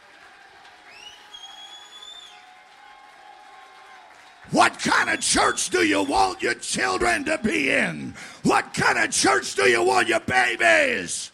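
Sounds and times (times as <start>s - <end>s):
crowd clapping: 0.0s - 11.3s
speech: 4.5s - 11.3s.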